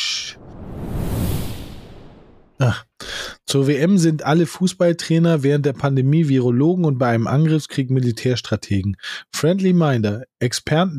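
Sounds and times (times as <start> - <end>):
whoosh transition sound effect: 0.0 - 2.6
speech: 2.6 - 2.9, 3.5 - 10.9.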